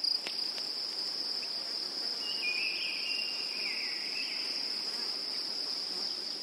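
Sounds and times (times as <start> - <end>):
field crickets chirping in a May meadow: 0.0 - 6.4.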